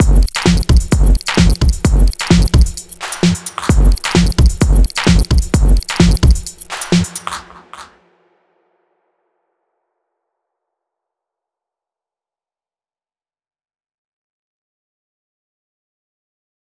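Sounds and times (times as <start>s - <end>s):
drum kit pattern: 0.0s - 7.9s.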